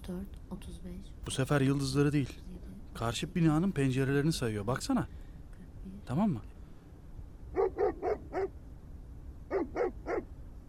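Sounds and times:
low hum: 0.0s - 10.6s
speech: 0.1s - 5.2s, 6.0s - 6.5s
embassy dog barking: 7.6s - 8.6s, 9.5s - 10.3s.

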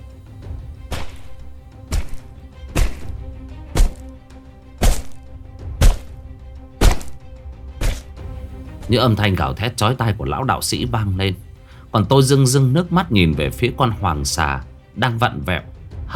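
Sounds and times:
heavy hammer blows striking a man's head: 0.8s - 8.2s
speech: 8.9s - 16.1s.

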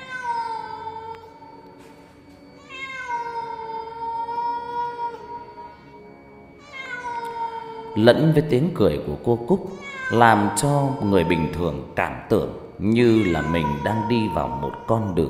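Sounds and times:
cat yowling mournfully in an alley: 0.0s - 1.4s, 2.6s - 5.8s, 6.6s - 8.0s, 9.7s - 11.9s, 13.0s - 15.2s
speech: 8.0s - 15.2s.

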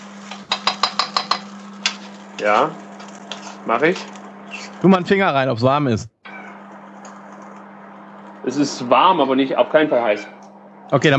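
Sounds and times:
steady low hum: 0.0s - 11.1s
spoon stirring peanut curry chicken in a pot: 0.4s - 2.0s
speech: 2.4s - 2.8s, 3.6s - 4.2s, 4.8s - 6.1s, 8.5s - 11.1s.

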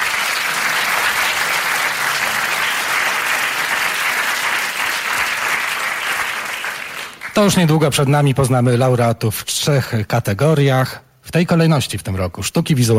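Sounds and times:
audience applause at a live radio awards event: 0.0s - 7.6s
speech: 7.4s - 12.9s.

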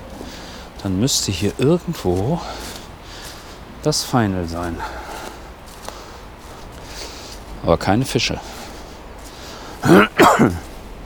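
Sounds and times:
speech: 0.8s - 2.8s, 3.8s - 5.1s, 7.6s - 8.6s, 9.8s - 10.6s
person with a lingering cough coughing: 9.8s - 10.7s.

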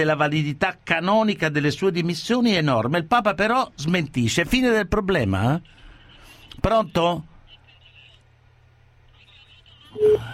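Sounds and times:
speech: 0.0s - 5.8s, 6.6s - 7.3s, 10.0s - 10.3s
faint low noise: 0.0s - 10.3s
telephone keypad tones dialing a number: 10.0s - 10.3s.

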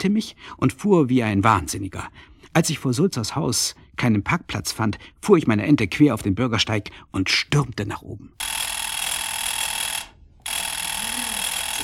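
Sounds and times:
speech: 0.0s - 8.5s
electric doorbell ringing with a metallic buzz: 8.4s - 11.8s.

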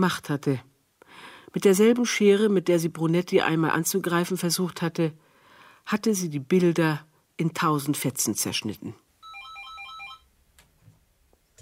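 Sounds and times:
speech: 0.0s - 0.7s, 1.5s - 5.2s, 5.8s - 9.0s
telephone ringing at home with an electronic trill: 9.2s - 10.3s.

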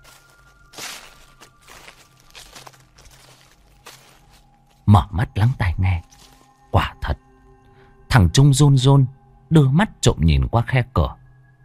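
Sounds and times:
light footsteps on dry leaves: 0.0s - 4.9s, 5.5s - 6.6s
speech: 4.9s - 6.1s, 8.2s - 11.2s.

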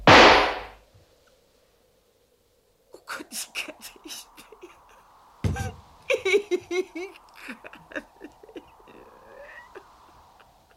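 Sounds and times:
rifle gunshot: 0.0s - 0.8s
laughter: 3.1s - 10.7s.

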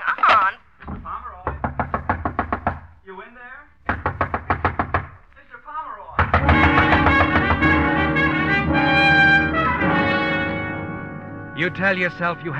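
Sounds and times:
loud rapid pounding knocks on a door: 0.8s - 3.0s, 3.8s - 5.3s, 6.2s - 8.8s
loud dramatic music: 6.2s - 12.5s
speech: 11.6s - 12.5s.

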